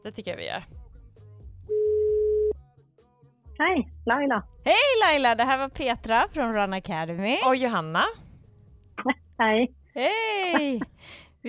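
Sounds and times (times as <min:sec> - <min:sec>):
speech: 0:00.0 - 0:00.8, 0:03.6 - 0:08.2, 0:09.0 - 0:11.4
telephone ringing tone while placing a call: 0:01.7 - 0:02.6
laughter: 0:10.5 - 0:10.9.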